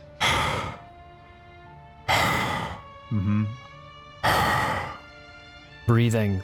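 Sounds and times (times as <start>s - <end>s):
person imitating heavy raspy breathing through a mask: 0.0s - 0.9s, 2.1s - 3.0s, 4.2s - 5.2s
voiced hum: 0.0s - 0.9s, 2.1s - 3.6s, 4.2s - 5.1s
speech: 3.1s - 3.7s, 5.9s - 6.4s.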